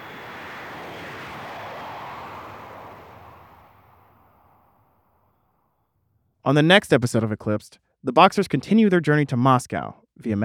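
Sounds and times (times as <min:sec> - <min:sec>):
jet airplane roaring as it takes off: 0:00.0 - 0:05.5
speech: 0:06.4 - 0:10.4.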